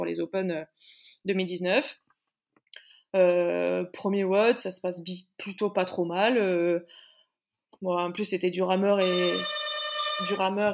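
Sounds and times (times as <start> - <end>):
speech: 0.1 - 2.0, 3.1 - 7.0, 7.8 - 9.6, 10.2 - 10.7
electronic doorbell ringing with a slight warble: 9.0 - 10.7.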